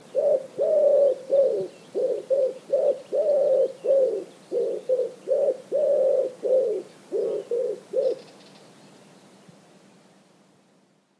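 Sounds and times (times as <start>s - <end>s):
wood pigeon: 0.0s - 8.6s.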